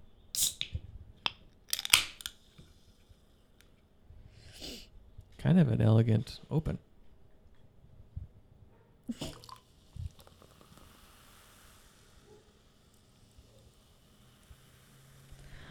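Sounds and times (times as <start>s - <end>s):
soft carbonated hiss and crackle of a fizzy drink: 0.4s - 0.8s, 1.6s - 3.8s, 9.1s - 15.6s
speech: 5.4s - 6.9s
fizzy drink poured into glasses fresh out of the dishwasher: 9.1s - 15.6s.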